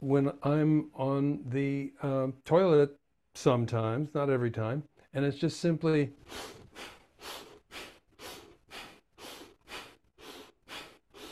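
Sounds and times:
speech: 0:00.0 - 0:07.4
rapid rhythmic breathing in a breathing exercise: 0:06.1 - 0:11.3.

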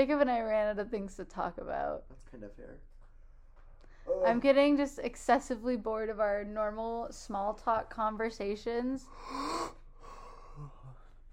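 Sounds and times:
speech: 0:00.0 - 0:02.9, 0:04.0 - 0:09.8, 0:10.6 - 0:10.8
person yawning: 0:04.1 - 0:04.4.

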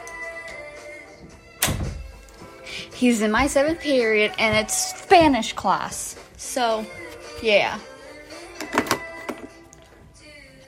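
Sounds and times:
door pushed shut: 0:01.6 - 0:02.2
speech: 0:03.0 - 0:07.9.

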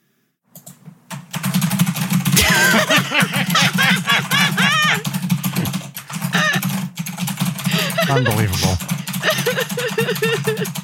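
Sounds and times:
typing on a computer keyboard: 0:00.5 - 0:02.4, 0:03.9 - 0:08.2, 0:08.8 - 0:10.8
people laughing: 0:02.4 - 0:06.7, 0:07.7 - 0:10.8
speech: 0:08.1 - 0:08.9, 0:10.1 - 0:10.8.

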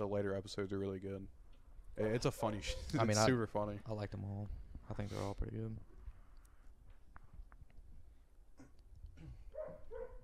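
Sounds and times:
speech: 0:00.0 - 0:01.4, 0:02.0 - 0:05.9
dogs barking faintly: 0:09.5 - 0:10.2.

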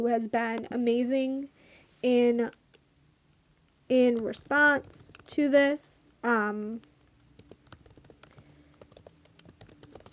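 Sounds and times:
speech: 0:00.0 - 0:02.6, 0:03.9 - 0:06.9
typing on a computer keyboard: 0:04.1 - 0:05.6, 0:06.8 - 0:10.1.

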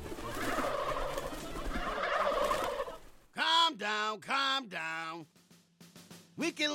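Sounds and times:
turkeys gobbling in a chorus: 0:00.0 - 0:03.3
speech: 0:03.8 - 0:05.4, 0:06.4 - 0:06.7.

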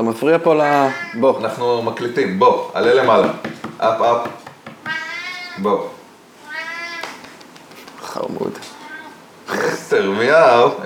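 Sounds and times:
speech: 0:00.0 - 0:04.4, 0:05.6 - 0:06.0, 0:08.2 - 0:08.7, 0:09.5 - 0:10.8
cat meowing: 0:00.7 - 0:01.6, 0:04.8 - 0:07.4, 0:08.6 - 0:09.3.

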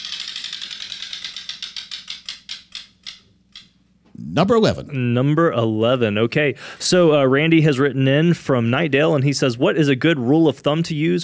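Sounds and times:
spinning prize wheel ratcheting: 0:00.0 - 0:03.2
speech: 0:04.2 - 0:11.2.

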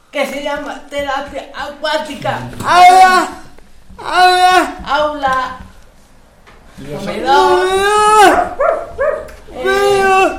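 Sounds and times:
speech: 0:00.1 - 0:03.4, 0:04.0 - 0:05.6, 0:06.8 - 0:08.9
dog barking with a whining edge: 0:08.3 - 0:09.4.

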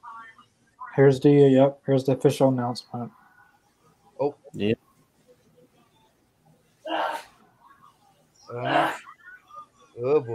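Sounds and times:
speech: 0:01.0 - 0:03.2, 0:04.2 - 0:04.8
person sneezing: 0:06.9 - 0:07.4, 0:08.6 - 0:09.0.

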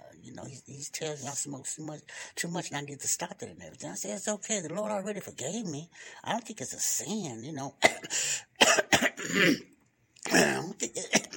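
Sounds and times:
speech: 0:00.3 - 0:08.7, 0:09.3 - 0:09.7, 0:10.3 - 0:11.2
person clearing throat: 0:07.8 - 0:11.3.

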